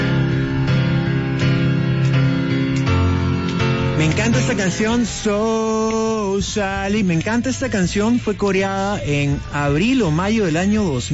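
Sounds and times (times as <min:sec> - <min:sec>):
full loud rock band playing: 0:00.0 - 0:07.0
steady evenly spaced rock piano chords: 0:00.0 - 0:11.1
speech: 0:04.1 - 0:11.1.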